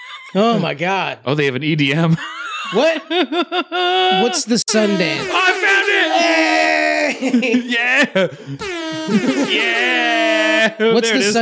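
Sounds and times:
laughter: 0.0 - 0.7, 2.1 - 11.3
speech: 0.3 - 6.5, 7.2 - 11.3
air horn blast played from a soundboard: 4.7 - 6.7, 8.6 - 10.5.

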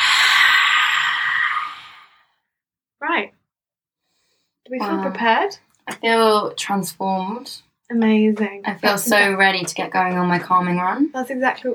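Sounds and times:
breathing through the mouth during a guided breathing exercise: 0.0 - 2.4
speech: 3.1 - 3.4, 4.7 - 11.7.

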